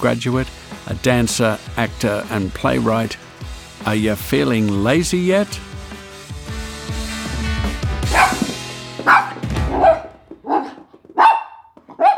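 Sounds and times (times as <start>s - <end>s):
speech: 0.0s - 3.2s, 3.8s - 5.7s
dog barking: 8.0s - 12.1s.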